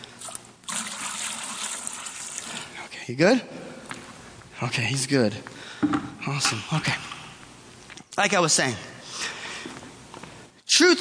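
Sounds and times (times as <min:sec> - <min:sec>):
water being poured: 0:00.2 - 0:02.7
speech: 0:03.1 - 0:03.6, 0:04.6 - 0:07.1, 0:08.2 - 0:08.9, 0:10.8 - 0:11.0.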